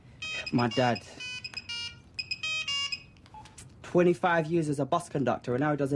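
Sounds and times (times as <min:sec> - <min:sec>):
telephone ringing with a bright electronic ringtone: 0:00.1 - 0:03.5
speech: 0:00.5 - 0:01.3, 0:03.9 - 0:05.9.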